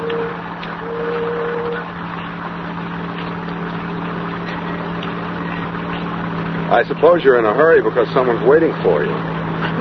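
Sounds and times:
car engine humming as the car drives off in the rain: 0:00.0 - 0:09.7
speech: 0:06.7 - 0:09.7.

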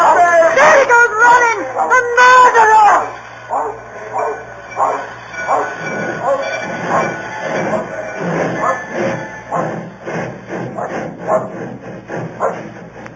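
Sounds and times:
thin high-pitched squeal from a train: 0:00.0 - 0:12.8
train rolling along rails between Dalby and Newton Stewart: 0:00.0 - 0:13.1
train wheels clattering on rails: 0:02.9 - 0:13.1.

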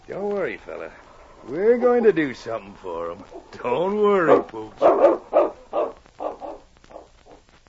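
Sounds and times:
speech: 0:00.1 - 0:05.2
large dog barking: 0:04.3 - 0:07.4.

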